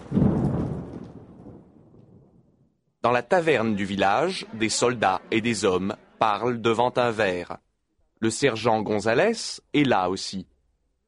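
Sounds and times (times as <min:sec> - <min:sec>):
loud deep thunderclap rumbling: 0:00.0 - 0:02.8
speech: 0:03.0 - 0:07.6, 0:08.2 - 0:10.5.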